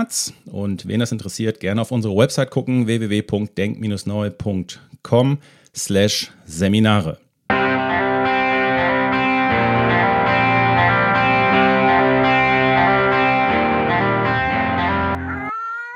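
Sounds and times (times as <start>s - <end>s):
speech: 0.0s - 7.2s
short band jingle played by a house band: 7.5s - 15.2s
heavily effected electric guitar with distortion and chorus shimmer: 7.5s - 15.4s.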